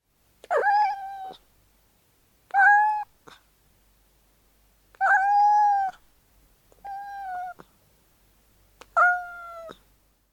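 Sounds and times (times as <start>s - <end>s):
young kitten meowing: 0.4s - 1.4s, 2.5s - 3.1s, 5.0s - 6.0s, 6.8s - 7.6s, 9.0s - 9.8s.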